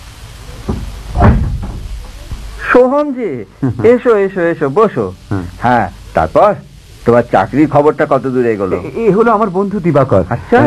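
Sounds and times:
steady hiss: 0:00.0 - 0:10.6
door opening: 0:00.4 - 0:02.6
wooden thuds and latch clunks of a door: 0:00.6 - 0:02.5
speech: 0:02.7 - 0:10.6.

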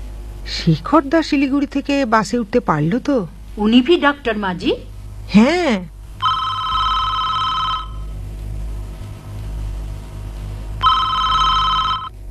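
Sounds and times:
low steady hum: 0:00.0 - 0:12.2
speech: 0:00.5 - 0:05.9
telephone ringing with electronic trilling bursts: 0:06.2 - 0:08.1, 0:10.8 - 0:12.2.

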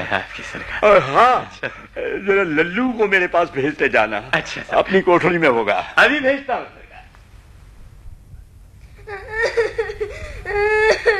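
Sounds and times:
speech: 0:00.0 - 0:06.8
child whimpering and sobbing: 0:09.0 - 0:11.1.

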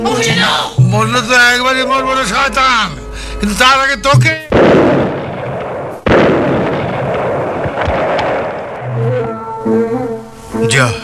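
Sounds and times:
speech: 0:00.2 - 0:05.1, 0:10.7 - 0:11.0
bomb explosion: 0:04.5 - 0:09.0.

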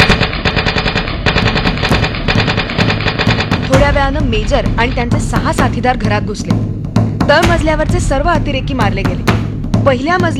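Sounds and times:
automatic gunfire from inside a village house: 0:00.0 - 0:03.8
speech: 0:04.0 - 0:10.3.

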